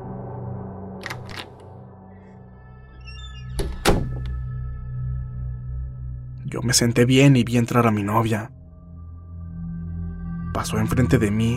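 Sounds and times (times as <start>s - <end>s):
front door latch clicks: 1.0s - 1.6s, 3.6s - 4.4s
front door opening with a short creaking squeak: 2.9s - 4.4s
solid thunk of a front door: 3.6s - 4.4s
speech: 6.5s - 8.6s, 10.6s - 11.5s.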